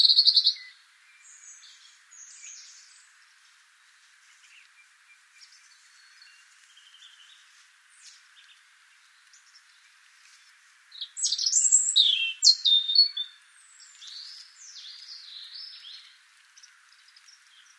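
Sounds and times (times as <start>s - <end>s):
European robin Erithacus rubecula song: 0.0s - 17.7s.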